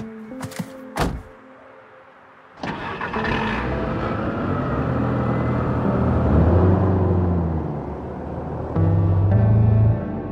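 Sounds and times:
door thudding shut: 1.0 - 1.3
car engine starting up and idling: 2.6 - 10.0.

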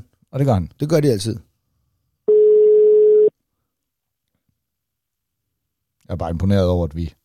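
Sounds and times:
speech: 0.3 - 1.5, 6.1 - 7.2
telephone ringback tone during outgoing call: 2.3 - 3.3.

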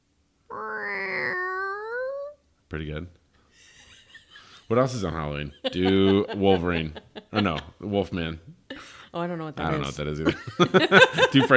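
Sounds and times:
person imitating a cat meow: 0.5 - 2.4
speech: 2.7 - 3.2, 4.7 - 11.5
laughter: 3.8 - 7.8, 9.8 - 11.5.

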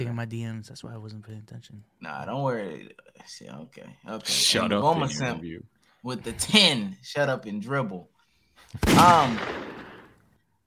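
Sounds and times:
speech: 0.0 - 9.6
gunshot sound effect: 8.8 - 10.2.

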